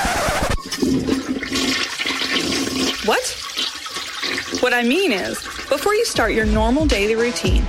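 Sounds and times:
toilet flushing with swirling water: 0:00.6 - 0:06.7
speech: 0:03.1 - 0:03.4, 0:04.6 - 0:07.6.

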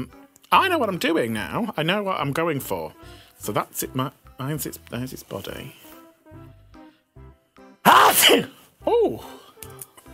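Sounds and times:
speech: 0:00.0 - 0:05.8, 0:08.2 - 0:09.4
person making a startled vocal exclamation: 0:07.8 - 0:09.3
person sneezing: 0:07.9 - 0:09.3.

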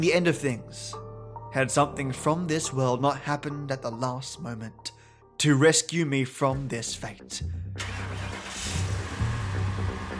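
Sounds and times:
speech: 0:00.0 - 0:08.0
car engine rumbling and revving up: 0:07.8 - 0:10.1.

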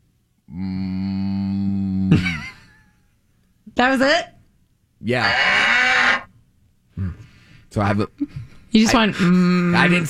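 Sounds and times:
person imitating a cow mooing: 0:00.5 - 0:02.2, 0:05.2 - 0:06.3
speech: 0:02.1 - 0:02.4, 0:03.8 - 0:04.3, 0:05.0 - 0:05.7, 0:07.7 - 0:10.0.

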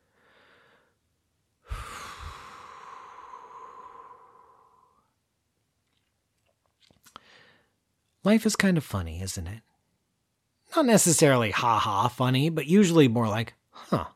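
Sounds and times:
slow breathy exhale: 0:00.0 - 0:01.0, 0:01.6 - 0:05.2
soft breath: 0:00.0 - 0:05.2, 0:07.1 - 0:07.8
speech: 0:08.2 - 0:09.7, 0:10.7 - 0:14.1.

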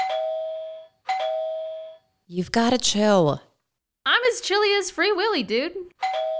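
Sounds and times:
electronic doorbell chiming at front door: 0:00.0 - 0:02.2, 0:06.0 - 0:06.3
speech: 0:02.3 - 0:03.5, 0:04.3 - 0:06.0.

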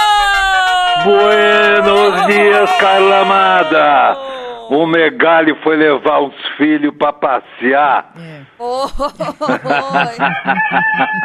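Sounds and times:
rooster crowing: 0:00.0 - 0:04.7, 0:10.2 - 0:11.2
laughter: 0:00.0 - 0:05.2, 0:08.6 - 0:11.2
speech: 0:01.0 - 0:11.2.

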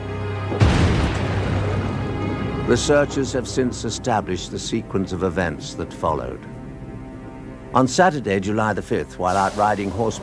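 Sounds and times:
low steady drone: 0:00.0 - 0:10.2
explosion with deep rumbling boom: 0:00.6 - 0:02.4
speech: 0:02.7 - 0:06.6, 0:07.7 - 0:10.2.

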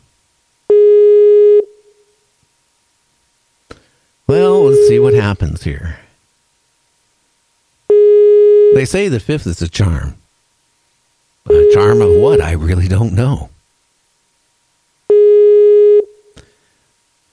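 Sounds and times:
telephone busy signal after a dropped phone call: 0:00.7 - 0:01.7, 0:04.3 - 0:05.3, 0:07.9 - 0:08.8, 0:11.5 - 0:12.6, 0:15.1 - 0:16.2
speech: 0:04.3 - 0:06.0, 0:08.8 - 0:10.2, 0:11.4 - 0:13.5.

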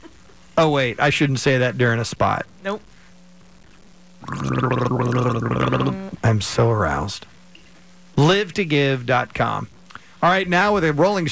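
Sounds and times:
speech: 0:00.6 - 0:02.9, 0:04.5 - 0:07.3, 0:08.2 - 0:11.3
person gargling with a bubbling watery rattle: 0:04.2 - 0:06.3.

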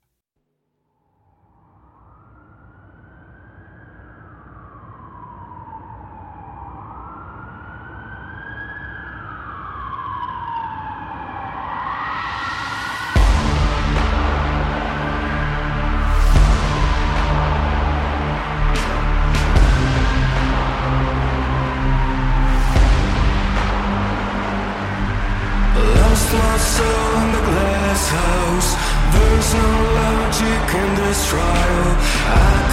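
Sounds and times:
alternative rock track by a band from Athens, Greece: 0:13.2 - 0:32.7.

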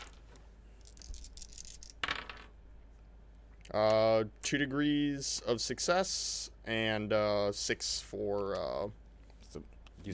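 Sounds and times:
dice rattling and tumbling across a hard surface: 0:00.0 - 0:00.2, 0:00.8 - 0:02.5
speech: 0:03.7 - 0:10.1.

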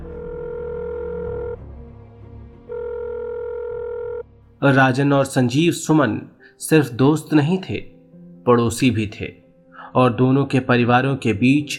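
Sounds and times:
telephone ringback tone: 0:00.0 - 0:01.6, 0:02.7 - 0:04.2
speech: 0:04.6 - 0:11.7.

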